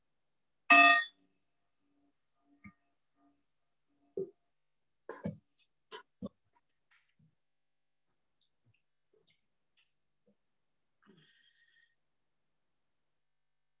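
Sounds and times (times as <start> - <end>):
meditation bell strike: 0.7 - 1.1.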